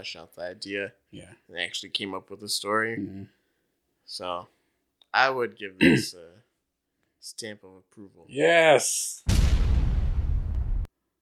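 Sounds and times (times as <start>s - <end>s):
speech: 0.0s - 3.4s, 4.1s - 6.5s, 7.2s - 9.7s
small explosion sound effect: 9.2s - 10.9s.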